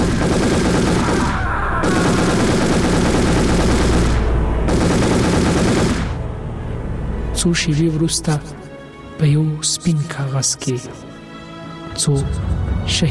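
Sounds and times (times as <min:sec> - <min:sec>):
machine-gun fire sound effect: 0:00.0 - 0:06.3
speech: 0:07.4 - 0:08.6, 0:09.2 - 0:11.1, 0:12.0 - 0:13.1.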